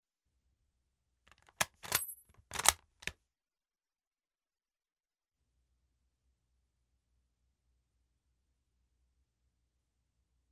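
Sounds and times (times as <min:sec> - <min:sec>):
K98 rifle bolt action cycling slowly, ejecting empty case and reloading: 0:01.3 - 0:03.1
empty case ejecting from K98 rifle: 0:01.3 - 0:03.1.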